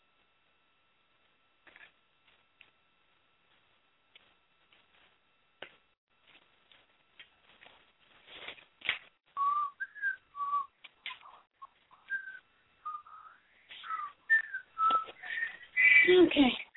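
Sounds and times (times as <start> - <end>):
person attempting to whistle with breathy puffs and thin notes: 9.4 - 16.1.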